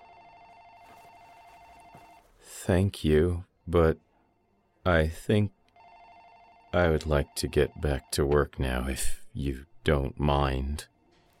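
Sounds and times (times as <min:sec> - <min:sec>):
desk telephone ringing: 0:00.0 - 0:02.2, 0:05.8 - 0:08.2
speech: 0:02.6 - 0:04.1, 0:04.8 - 0:05.6, 0:06.8 - 0:10.9.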